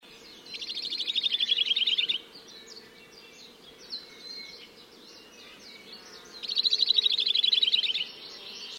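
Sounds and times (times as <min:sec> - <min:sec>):
Hawaii creeper calling: 0:00.2 - 0:08.7.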